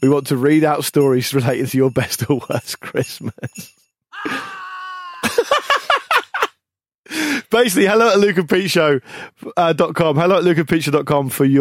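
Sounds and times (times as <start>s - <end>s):
speech: 0.0s - 4.6s, 7.5s - 11.5s
laughter: 3.2s - 6.5s
human voice letting out a long drawn-out scream and short sharp shrieks: 4.1s - 5.7s.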